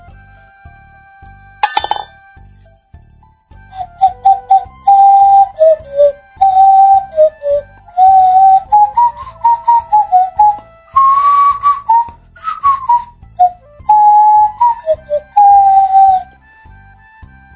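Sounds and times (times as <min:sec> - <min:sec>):
brief clink: 0:01.6 - 0:02.2
nose flute blown from the nostrils playing a simple melody: 0:03.6 - 0:17.5.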